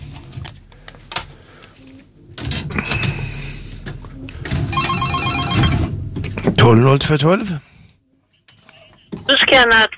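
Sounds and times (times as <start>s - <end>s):
telephone ringing with a rapid metallic trill: 4.7s - 6.0s
speech: 6.6s - 7.7s, 9.6s - 9.9s.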